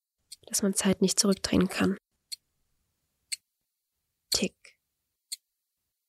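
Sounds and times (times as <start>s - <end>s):
watch ticking: 0.3s - 2.5s, 3.3s - 3.5s, 5.3s - 5.5s
speech: 0.5s - 2.1s, 4.4s - 4.7s.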